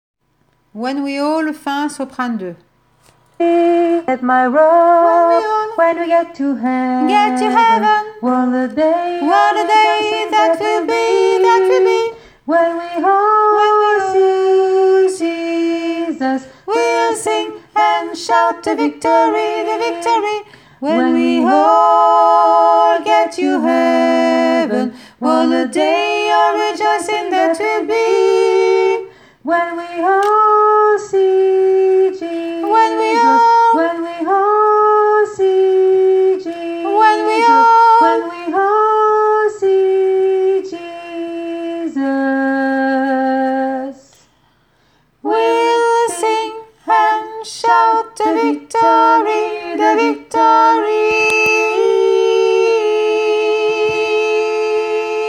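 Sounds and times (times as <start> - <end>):
soprano voice: 0.7 - 44.3, 45.2 - 55.2.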